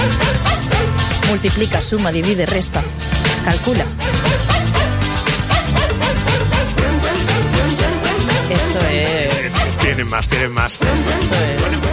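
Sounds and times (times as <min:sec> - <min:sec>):
upbeat Italo Disco dance track with steady beat and synths: 0:00.0 - 0:11.9
sampled dog barks: 0:00.2 - 0:01.0, 0:04.0 - 0:08.5
speech: 0:01.3 - 0:04.8, 0:08.6 - 0:11.9.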